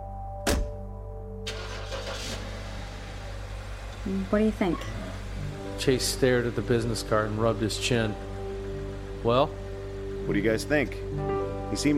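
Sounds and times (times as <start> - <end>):
sharp thump: 0.4 - 0.8
car engine humming: 1.5 - 11.9
speech: 4.0 - 5.0, 5.8 - 8.3, 9.2 - 9.6, 10.3 - 11.9.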